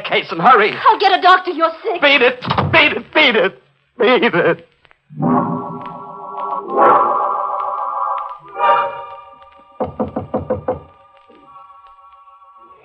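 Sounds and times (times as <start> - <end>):
speech: 0.1 - 5.9
sustained droning tones: 5.1 - 12.8
knocking on a door: 9.8 - 11.0.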